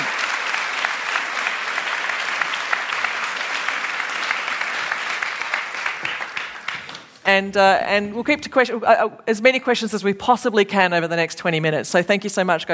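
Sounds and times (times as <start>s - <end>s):
room full of people applauding: 0.0s - 7.2s
speech: 7.3s - 12.7s.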